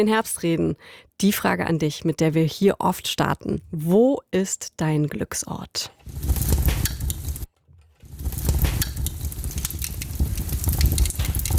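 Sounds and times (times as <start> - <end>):
speech: 0.0 - 6.5
crackling fireplace fire popping and snapping: 6.0 - 11.5.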